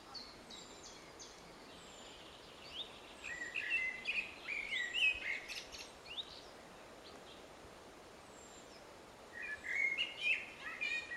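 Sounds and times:
steady background hiss: 0.0 - 11.1
Eurasian blackbird Turdus merula giving short chirped and warbled notes: 0.2 - 6.5, 9.4 - 11.1.

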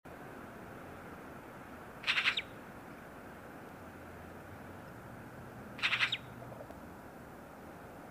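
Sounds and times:
low steady noise: 0.1 - 8.0
Eurasian magpie rattling call, Pica pica: 2.0 - 2.5, 5.8 - 6.3.

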